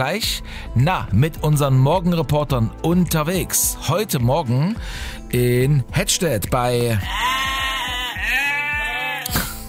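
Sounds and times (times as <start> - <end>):
speech: 0.0 - 7.6
Cameroon sheep bleating in Hettstedt in the morning: 7.0 - 9.3.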